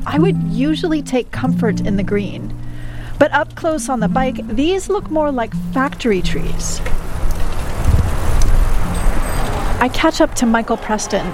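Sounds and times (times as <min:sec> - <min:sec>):
speech: 0:00.0 - 0:07.0, 0:09.8 - 0:11.3
blustery wind noise across the microphone: 0:00.0 - 0:11.3
cars and trucks passing on a road between a river and orchards: 0:00.0 - 0:11.3.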